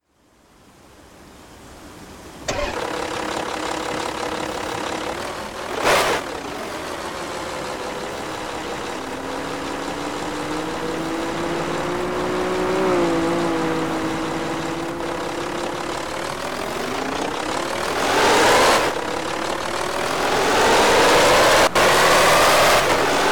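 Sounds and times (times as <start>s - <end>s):
Audi A4 2.5 V6 TDI diesel engine: 2.4s - 23.3s.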